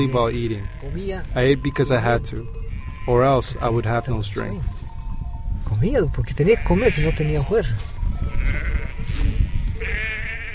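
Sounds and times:
sheep bleating on high mountain pasture: 0.0s - 1.3s, 2.6s - 4.0s, 6.4s - 7.6s, 8.2s - 10.5s
speech: 0.0s - 4.8s, 5.8s - 7.9s
continuous low rumble of wind or movement: 0.0s - 10.5s.

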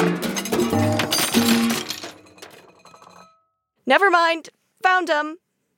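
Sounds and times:
metal frying pans clattering in a cupboard: 0.0s - 3.3s
speech: 3.9s - 5.4s.

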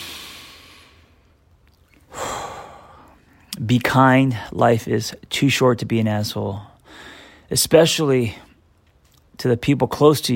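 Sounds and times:
deep slow breath taken as a calming exercise: 0.0s - 1.4s, 2.0s - 3.4s
speech: 3.6s - 8.5s, 9.4s - 10.3s.

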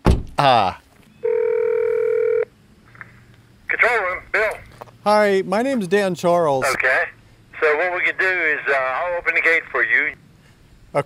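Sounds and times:
soft thump: 0.0s - 0.4s
speech: 0.4s - 0.8s, 5.0s - 6.8s, 7.7s - 10.2s
telephone ringing tone: 1.2s - 2.5s.

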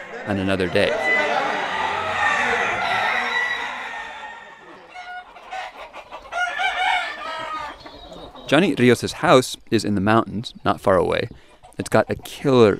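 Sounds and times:
rooster crowing: 0.0s - 7.8s
chickens clucking and squawking: 0.0s - 12.7s
speech: 0.2s - 1.1s, 8.5s - 12.7s.

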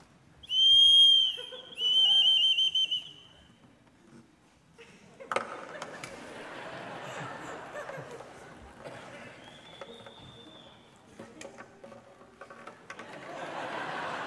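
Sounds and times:
shrill whistle imitating a bird mating call: 0.4s - 3.3s, 9.4s - 10.9s
laughter: 1.3s - 2.4s, 4.8s - 10.4s, 12.9s - 14.2s.

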